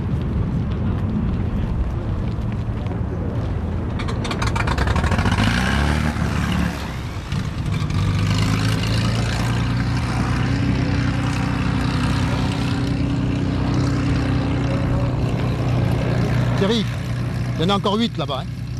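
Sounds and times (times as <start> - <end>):
small plane propeller engine roaring at full power taking off: 0.2 - 18.7
speech: 17.6 - 18.6.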